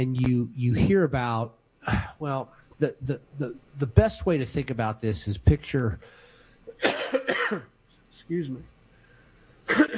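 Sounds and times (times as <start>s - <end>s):
speech: 0.0s - 6.2s, 6.8s - 7.7s, 8.3s - 8.7s
person coughing: 1.9s - 2.2s, 6.7s - 7.7s, 9.7s - 9.9s.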